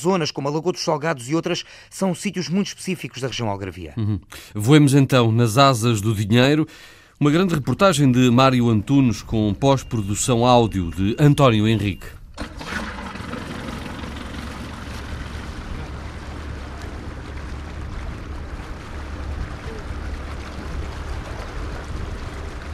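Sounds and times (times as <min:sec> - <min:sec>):
speech: 0:00.0 - 0:12.9
water rushing and splashing around the motorboat hull: 0:07.0 - 0:22.7
motorboat engine droning as the boat leaves the dock: 0:07.3 - 0:22.7.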